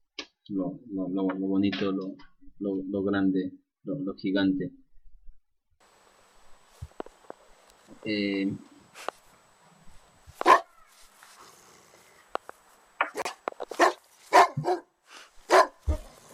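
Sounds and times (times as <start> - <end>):
speech: 0.5 - 4.8, 8.0 - 9.1
dog barking: 10.4 - 10.8, 13.1 - 16.3.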